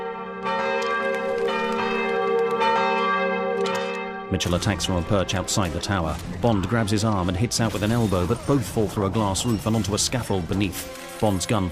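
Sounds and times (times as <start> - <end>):
church bell rung by hauling on the bell ropes: 0.0 - 6.1
speech: 4.3 - 11.7.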